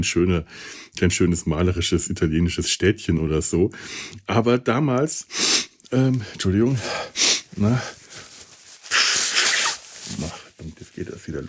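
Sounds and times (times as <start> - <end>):
speech: 0.0 - 8.0, 11.3 - 11.4
person blowing nose: 5.3 - 5.8, 6.8 - 10.5
person sniffing: 5.3 - 5.8, 6.8 - 10.5.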